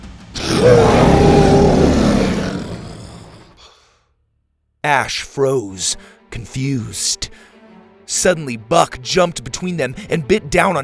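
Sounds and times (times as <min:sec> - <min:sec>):
dinosaur roar: 0:00.4 - 0:03.8
speech: 0:00.6 - 0:00.8, 0:04.9 - 0:07.5, 0:08.1 - 0:10.8.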